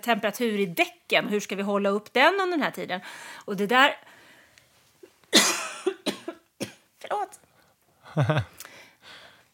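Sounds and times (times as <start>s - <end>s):
speech: 0.0s - 4.2s, 8.2s - 8.6s
harsh raspy coughing fit: 5.3s - 6.9s.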